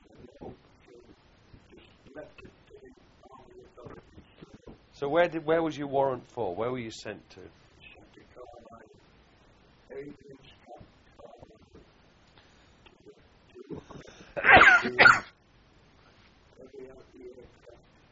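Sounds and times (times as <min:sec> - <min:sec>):
speech: 0:05.0 - 0:07.6
person sneezing: 0:14.4 - 0:15.4.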